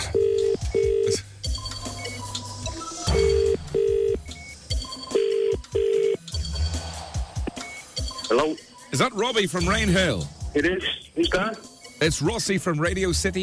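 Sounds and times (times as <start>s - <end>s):
telephone number being dialled on a keypad: 0.0s - 6.2s
speech: 8.4s - 13.4s.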